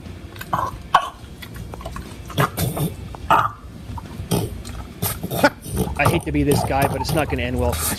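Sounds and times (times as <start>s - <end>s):
French Bulldog snorting and grunting while eating a veggie burger: 0.4s - 3.6s, 4.3s - 7.9s
French Bulldog wet huffing breaths: 5.0s - 7.9s
speech: 6.2s - 7.9s.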